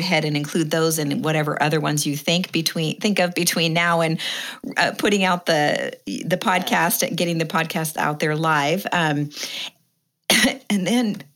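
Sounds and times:
speech: 0.0s - 9.7s, 10.4s - 11.3s
person coughing harshly: 10.3s - 10.7s.

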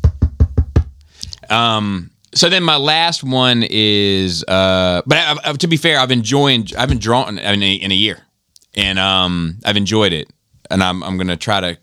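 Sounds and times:
knocks on a wooden surface: 0.0s - 1.0s
speech: 1.5s - 11.8s.

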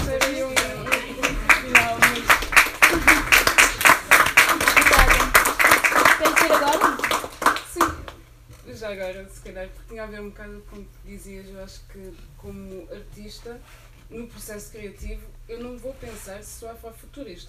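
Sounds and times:
small audience clapping at an event: 0.0s - 7.9s
speech: 9.1s - 17.4s.

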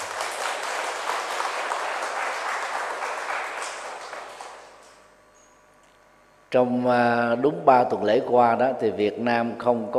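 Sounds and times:
crowd applauding: 0.0s - 5.0s
speech: 6.5s - 9.9s.

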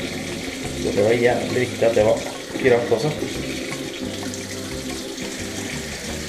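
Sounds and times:
water running from a tap: 0.0s - 6.2s
speech: 0.8s - 4.2s.

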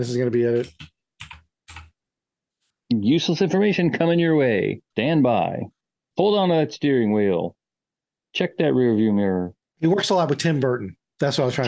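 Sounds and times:
speech: 0.0s - 0.9s, 3.0s - 7.6s, 8.3s - 11.6s
typing on a computer keyboard: 0.6s - 2.0s.

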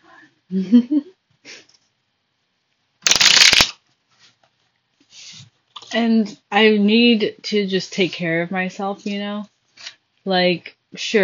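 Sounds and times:
speech: 0.5s - 1.6s, 5.9s - 9.5s, 10.2s - 11.2s
deck of affirmation cards shuffling in a riffle: 3.1s - 3.8s.

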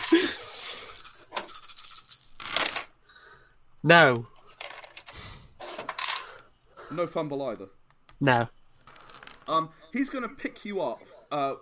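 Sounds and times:
three dice shaken and rolled: 0.0s - 2.9s, 4.5s - 6.3s, 8.8s - 9.6s
speech: 3.8s - 4.3s, 6.9s - 8.6s, 9.5s - 11.6s.

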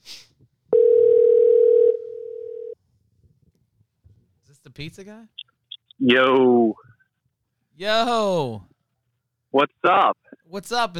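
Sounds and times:
telephone dial tone: 0.8s - 2.8s
speech: 4.8s - 6.9s, 7.8s - 8.7s, 9.5s - 10.9s.

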